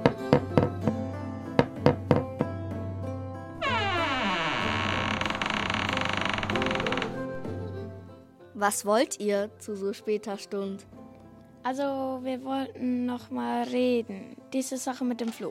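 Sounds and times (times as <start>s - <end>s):
knocking on a door: 0.1s - 1.0s, 1.6s - 2.6s
long drawn-out creaking groan: 3.6s - 7.8s
speech: 8.6s - 11.0s, 11.6s - 15.4s.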